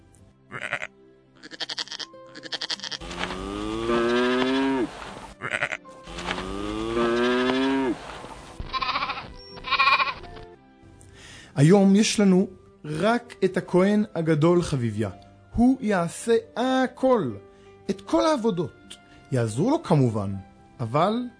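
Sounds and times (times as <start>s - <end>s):
sheep bleating in short bursts: 0.5s - 8.0s, 8.6s - 10.3s
bull letting out long deep moos: 0.5s - 8.1s
speech: 11.6s - 21.3s.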